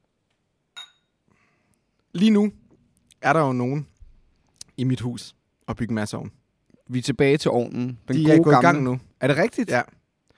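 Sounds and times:
faint glass tap: 0.8s - 1.1s
glassy rustling: 0.8s - 1.1s
two glasses clinking in a toast: 0.8s - 1.2s
speech: 2.2s - 2.6s, 3.2s - 3.9s, 4.8s - 10.0s.

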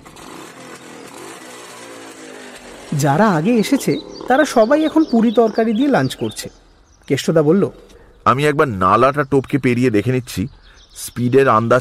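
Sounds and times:
motorcycle engine running: 0.0s - 7.0s
speech: 2.9s - 11.7s.

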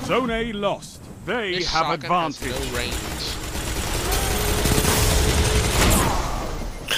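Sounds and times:
speech: 0.1s - 3.4s
video game machine gun fire: 2.4s - 6.8s.

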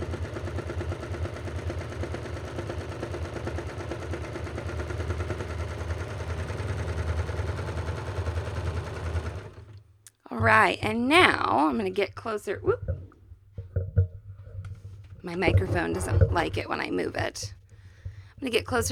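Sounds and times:
serger sewing a two-thread flatlock seam for underwear: 0.0s - 11.8s, 12.7s - 17.3s
speech: 10.4s - 12.8s, 15.3s - 17.6s, 18.4s - 18.8s.

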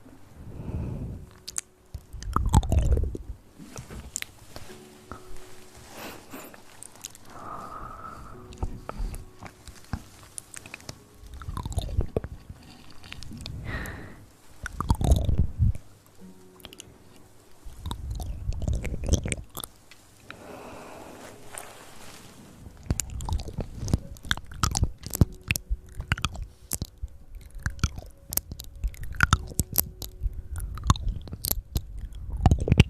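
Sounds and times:
wet mouth sounds with chewing and crunching: 1.3s - 3.2s, 6.7s - 7.4s, 8.3s - 13.9s, 14.6s - 15.8s, 17.7s - 19.7s, 22.8s - 32.8s
mouth clicking and smacking: 1.3s - 5.2s, 6.0s - 16.9s, 17.6s - 20.4s, 22.8s - 32.8s.

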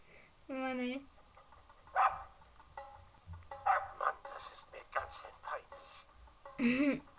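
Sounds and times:
speech: 0.5s - 1.2s, 6.6s - 7.1s
dog barking in short sharp yaps: 1.9s - 2.4s, 3.6s - 4.2s.

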